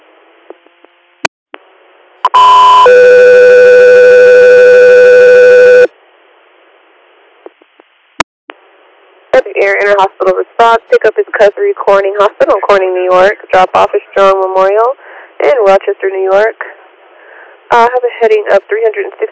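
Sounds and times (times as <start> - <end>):
electronic radio dispatch alert tone for an air medical crew: 2.2 - 5.9
speech: 9.9 - 16.8, 17.7 - 19.2.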